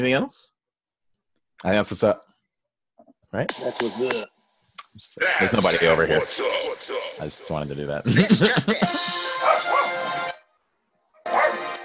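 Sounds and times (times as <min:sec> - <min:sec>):
speech: 0:00.0 - 0:00.6, 0:01.6 - 0:02.3, 0:03.3 - 0:04.3, 0:05.0 - 0:10.1
laughter: 0:05.2 - 0:10.3
dog barking: 0:09.4 - 0:10.1, 0:11.2 - 0:11.7.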